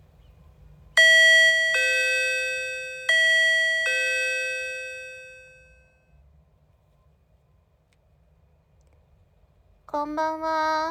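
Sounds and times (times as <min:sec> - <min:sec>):
intercom doorbell two-note ding-dong chime: 0:01.0 - 0:06.0
speech: 0:10.0 - 0:10.9.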